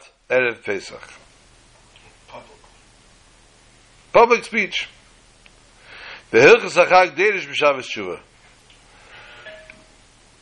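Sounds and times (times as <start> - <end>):
speech: 0.3 - 1.2, 4.2 - 5.0, 6.3 - 8.3
doorbell chiming with a soft electronic tone: 9.4 - 9.9.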